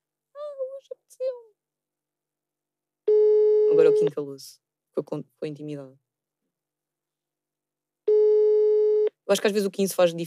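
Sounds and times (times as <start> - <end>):
mobile phone call tone for an unanswered call: 3.1 - 4.1, 8.1 - 9.1
speech: 4.0 - 6.0, 9.3 - 10.2.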